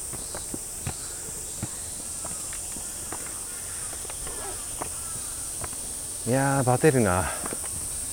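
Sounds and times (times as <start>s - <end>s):
people's footsteps climbing outdoor stairs in Izu, Japan: 0.0s - 5.9s
steady high insect buzz: 0.0s - 8.1s
speech: 6.3s - 7.4s.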